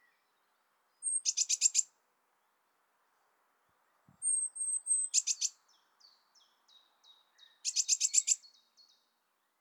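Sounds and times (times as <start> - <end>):
Eurasian blue tit Cyanistes caeruleus calling: 1.0 - 1.9, 4.2 - 5.6, 7.6 - 8.4.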